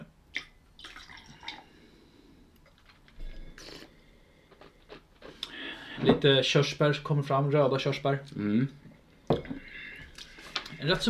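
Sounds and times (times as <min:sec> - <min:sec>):
water dripping from a glass: 0:00.3 - 0:01.7
speech: 0:06.2 - 0:08.8, 0:10.8 - 0:11.0.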